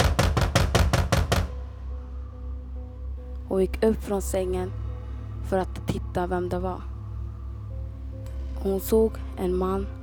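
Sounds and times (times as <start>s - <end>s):
hard knocking: 0.0s - 1.6s
low steady rumble: 0.0s - 10.0s
speech: 3.5s - 4.8s, 5.5s - 6.9s, 8.6s - 10.0s.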